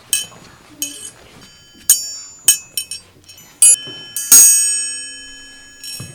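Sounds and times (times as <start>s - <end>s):
metal triangle being struck: 0.0s - 6.1s.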